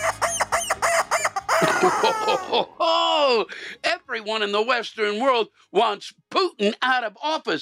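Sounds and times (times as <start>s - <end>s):
quick loud chicken clucks: 0.0s - 2.5s
drawn-out rooster crow: 0.0s - 2.6s
laughter: 1.5s - 3.5s
speech: 1.8s - 7.6s.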